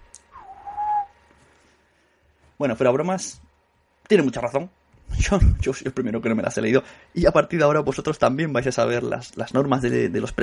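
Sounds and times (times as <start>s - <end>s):
person whistling mimicking speech: 0.3s - 1.2s
speech: 2.6s - 3.5s, 4.1s - 10.4s.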